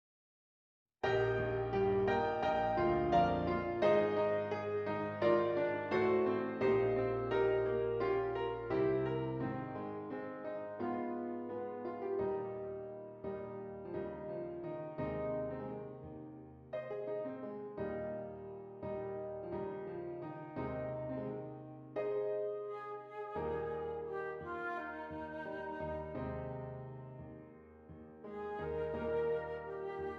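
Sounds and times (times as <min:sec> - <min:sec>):
piano: 0:01.0 - 0:30.1
flute: 0:22.3 - 0:27.4, 0:28.2 - 0:30.1.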